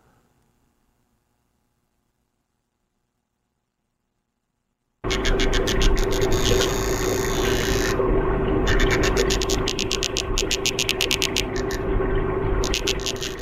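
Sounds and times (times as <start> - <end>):
fish drumming with its swim bladder underwater in a tank: 5.0 - 13.3.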